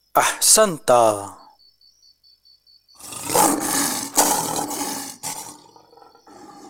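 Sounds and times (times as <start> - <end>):
speech: 0.2 - 1.4
lion roaring: 3.0 - 6.6.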